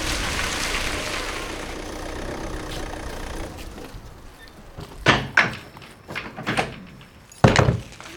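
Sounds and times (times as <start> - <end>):
car towing a horse trailer, engine rumble: 0.0 - 5.4
horse trailer rear ramp opened, thuds and clunks: 0.0 - 7.9.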